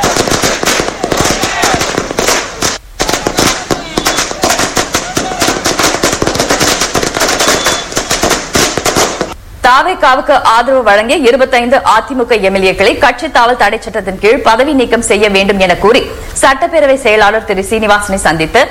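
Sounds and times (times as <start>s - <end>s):
string of firecrackers bursting in celebration outdoors in Tindivanam: 0.0s - 9.4s
speech: 9.7s - 18.6s.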